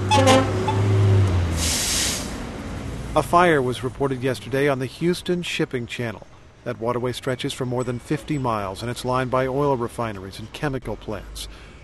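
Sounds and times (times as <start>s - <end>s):
shorter higher honk: 0.0s - 0.9s
long low horn blast: 0.0s - 1.8s
heavy city traffic in Houston Texas: 0.0s - 11.8s
rush of hissing air: 1.5s - 2.5s
speech: 3.2s - 11.6s.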